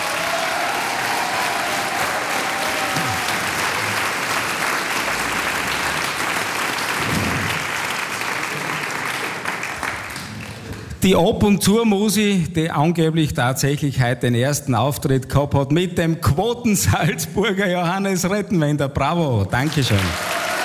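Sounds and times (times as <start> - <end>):
faint voices and cheers: 0.0 - 3.6, 19.9 - 20.6
dense applause from a large audience: 0.0 - 11.0, 19.6 - 20.6
speech: 11.0 - 20.3.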